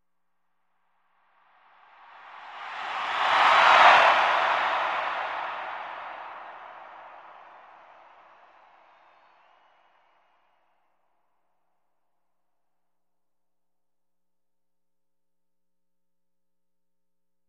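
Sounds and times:
arena crowd cheering in a sports arena: 2.0 - 10.7.

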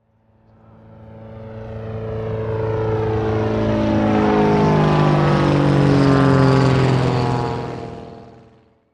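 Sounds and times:
Hawker Hurricane propeller plane flying overhead: 0.0 - 8.9.

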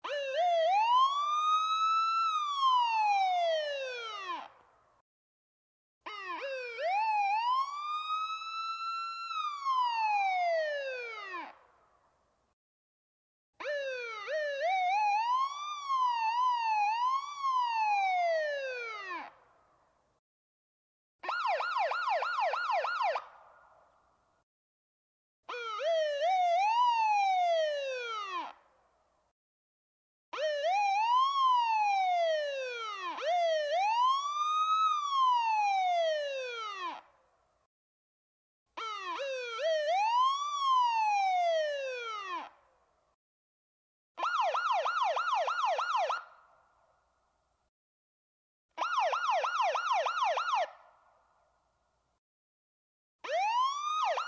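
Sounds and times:
ambulance wailer siren: 0.0 - 4.6, 6.1 - 11.6, 13.6 - 19.4, 21.2 - 23.4, 25.5 - 28.6, 30.3 - 37.1, 38.8 - 42.6, 44.2 - 46.4, 48.8 - 50.9, 53.2 - 54.2.

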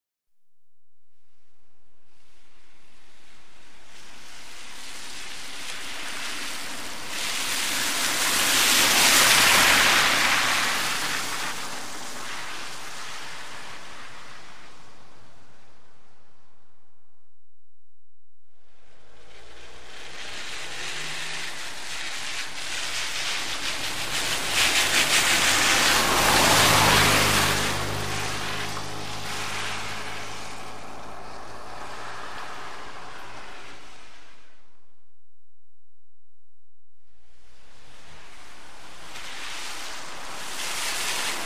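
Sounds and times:
wet vehicles passing fast by a puddle: 2.6 - 15.9, 19.1 - 34.5, 37.8 - 41.4.

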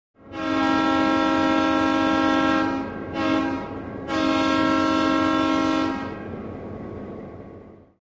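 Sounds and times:
train whistle blast: 0.3 - 6.3.

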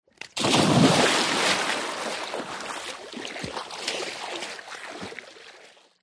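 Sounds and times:
cannonball dive splash: 0.4 - 5.2.

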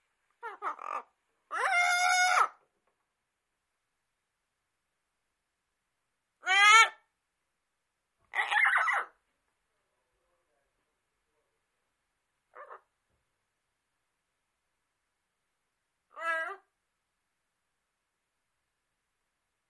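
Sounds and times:
parrot squawks: 0.4 - 2.6, 6.4 - 7.1, 8.3 - 9.2, 12.5 - 12.9, 16.1 - 16.7.

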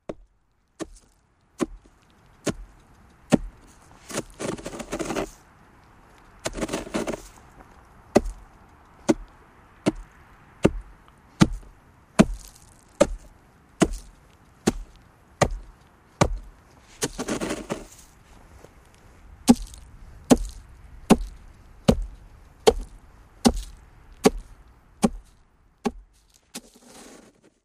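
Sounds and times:
ice scraping and impacts: 3.3 - 5.4, 6.4 - 7.4, 8.2 - 8.4, 11.4 - 18.2, 19.5 - 22.1, 22.7 - 27.6.

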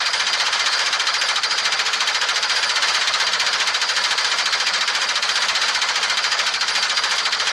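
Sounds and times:
rotary mower running steadily at low speed: 0.0 - 7.5.

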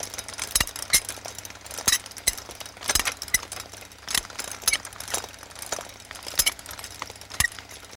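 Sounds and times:
squeaky roof vent rotating gears: 0.4 - 7.9.

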